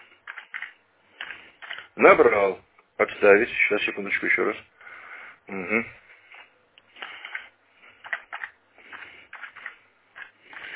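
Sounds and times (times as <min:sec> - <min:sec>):
typing on a computer keyboard: 0:00.2 - 0:01.9, 0:06.3 - 0:10.7
speech: 0:02.0 - 0:04.8, 0:05.5 - 0:06.0.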